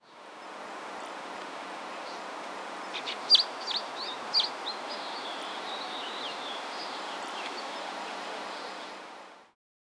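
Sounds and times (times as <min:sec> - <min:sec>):
background hiss: 0:00.0 - 0:09.5
bird chirps: 0:02.9 - 0:07.6.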